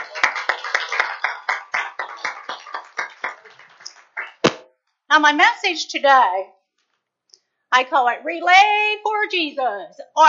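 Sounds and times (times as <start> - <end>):
church audience clapping in praise: 0.0 - 4.6
speech: 5.1 - 6.6, 7.7 - 10.2.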